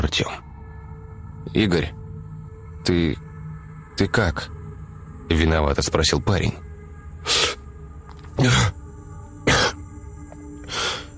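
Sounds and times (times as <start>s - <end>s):
speech: 0.1s - 0.5s, 1.4s - 2.0s, 2.8s - 3.2s, 4.0s - 4.6s, 5.3s - 6.6s, 7.2s - 7.6s, 8.4s - 8.8s
man coughing up blood after being hurt: 9.4s - 9.8s.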